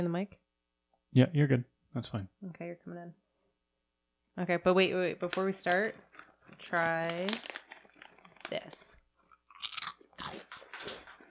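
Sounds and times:
speech: 0:00.0 - 0:00.5, 0:01.1 - 0:03.2, 0:04.4 - 0:07.5, 0:08.5 - 0:09.0
crunching and chewing a crunchy moon cheese snack close to a microphone: 0:06.0 - 0:11.2.

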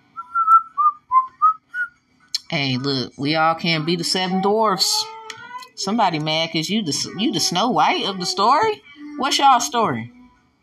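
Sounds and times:
person whistling a tune: 0:00.2 - 0:02.0
speech: 0:02.5 - 0:05.2, 0:05.8 - 0:10.2.

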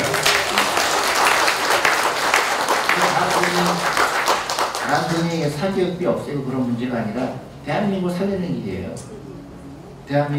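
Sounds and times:
audience applause: 0:00.0 - 0:05.4
speech: 0:05.2 - 0:09.5, 0:10.1 - 0:10.3.

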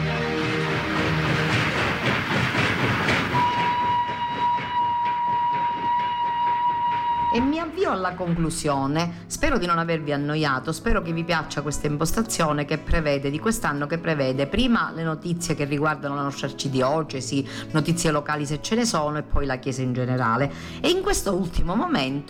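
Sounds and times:
train rolling past on rails with wheels clacking over track joints: 0:00.1 - 0:08.6
speech: 0:07.9 - 0:22.2.

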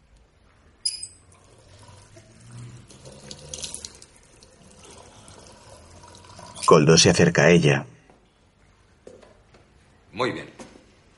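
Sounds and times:
water running from a tap at a sink: 0:01.3 - 0:06.7
speech: 0:06.7 - 0:07.9, 0:10.2 - 0:10.5.

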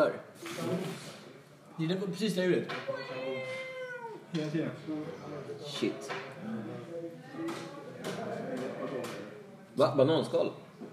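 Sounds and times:
speech: 0:00.0 - 0:00.8, 0:01.8 - 0:03.7, 0:04.3 - 0:10.9
cat meowing: 0:02.9 - 0:04.3.

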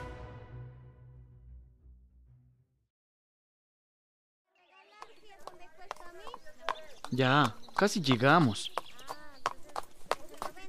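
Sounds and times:
donkey hooves clip-clopping: 0:04.8 - 0:10.6
speech: 0:05.6 - 0:08.8.

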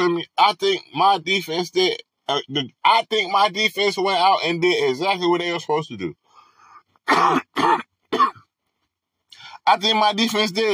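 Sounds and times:
speech: 0:00.0 - 0:06.2, 0:07.1 - 0:07.9, 0:09.6 - 0:10.7
man with a dry throat coughing harshly: 0:07.0 - 0:08.5.

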